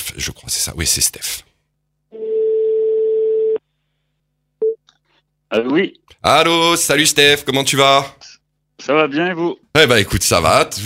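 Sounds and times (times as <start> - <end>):
speech: 0.1 - 1.5, 5.5 - 10.8
telephone ringback tone as a call is placed: 2.2 - 3.6.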